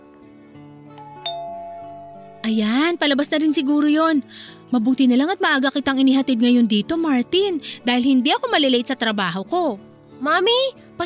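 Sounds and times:
doorbell ding-dong chime: 0:01.0 - 0:02.6
speech: 0:02.5 - 0:11.0.

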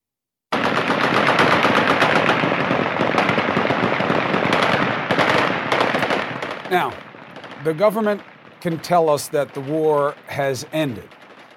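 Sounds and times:
celebratory automatic gunfire in Afghanistan: 0:00.5 - 0:11.5
speech: 0:06.7 - 0:07.0, 0:07.6 - 0:11.2.

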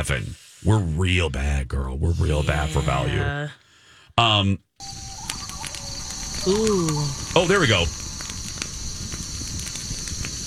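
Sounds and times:
speech: 0:00.0 - 0:03.6, 0:04.2 - 0:05.1, 0:06.4 - 0:08.0
campfire crackling with pops and snaps: 0:04.8 - 0:10.4.

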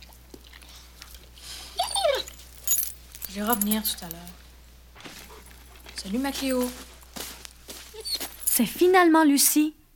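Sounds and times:
ill dog whimpering in a high wavering whine: 0:01.8 - 0:02.4, 0:07.9 - 0:08.4
brief metallic jingle: 0:02.2 - 0:04.2
speech: 0:03.4 - 0:04.4, 0:06.0 - 0:06.9, 0:08.6 - 0:09.8.

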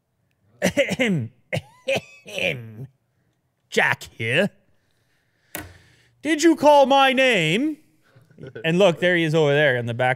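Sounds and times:
deliberate fake social coughs: 0:00.6 - 0:02.9
speech: 0:00.7 - 0:02.9, 0:03.7 - 0:04.6, 0:06.2 - 0:07.8, 0:08.4 - 0:10.1
laughter: 0:08.1 - 0:09.0.

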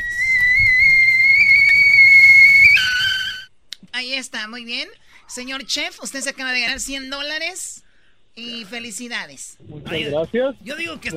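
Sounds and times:
kettle-like whistle from a pot of boiling water: 0:00.0 - 0:03.5
speech: 0:04.0 - 0:07.8, 0:08.4 - 0:11.1.

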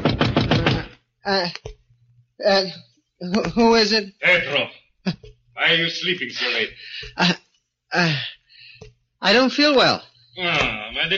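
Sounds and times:
sharp knocks on a door: 0:00.0 - 0:00.9
speech: 0:01.3 - 0:01.8, 0:02.4 - 0:08.4, 0:09.2 - 0:11.1.

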